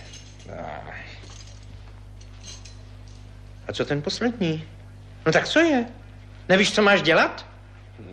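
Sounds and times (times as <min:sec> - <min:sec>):
keys jingling: 0:00.0 - 0:00.6, 0:01.2 - 0:03.4
steady low hum: 0:00.0 - 0:08.1
speech: 0:03.7 - 0:08.1.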